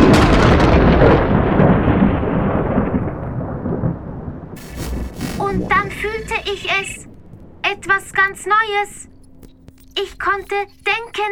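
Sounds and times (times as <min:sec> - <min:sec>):
loud thunderclap after lightning rolling into deep rumble: 0:00.0 - 0:07.7
speech: 0:08.2 - 0:09.1, 0:10.0 - 0:11.2.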